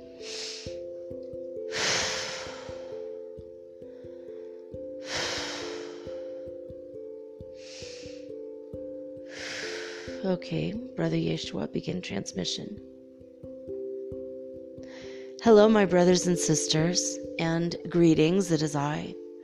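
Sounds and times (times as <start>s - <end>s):
slow deep breathing: 0.0s - 0.9s, 1.7s - 3.2s, 3.8s - 6.7s, 7.4s - 8.5s, 9.2s - 10.2s
quiet sustained musical background: 0.0s - 19.4s
speech: 10.2s - 12.9s, 15.5s - 19.2s.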